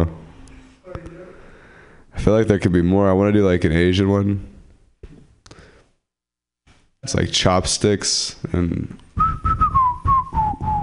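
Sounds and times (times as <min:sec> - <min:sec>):
speech: 0:02.2 - 0:04.5, 0:07.0 - 0:09.5
person whistling a short tune: 0:09.2 - 0:10.8.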